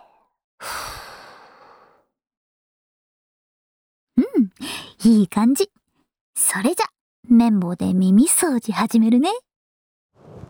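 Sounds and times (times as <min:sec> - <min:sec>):
person exhaling: 0:00.6 - 0:02.0
speech: 0:05.0 - 0:05.8, 0:06.4 - 0:09.4.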